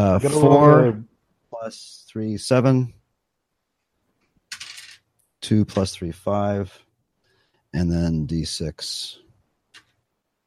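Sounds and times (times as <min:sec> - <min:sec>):
speech: 0:00.0 - 0:03.0, 0:05.4 - 0:06.8, 0:07.7 - 0:09.2
dice clattering on a hard surface: 0:04.5 - 0:05.0.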